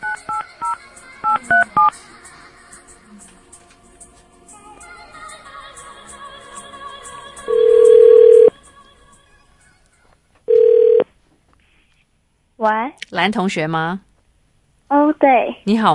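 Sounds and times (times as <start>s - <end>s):
touch-tone telephone dialing beeps: 0.0s - 1.9s, 7.5s - 8.5s, 10.5s - 11.0s
long steady telephone ringback tones: 7.5s - 8.5s, 10.5s - 11.0s
speech: 13.1s - 14.1s, 15.2s - 15.9s.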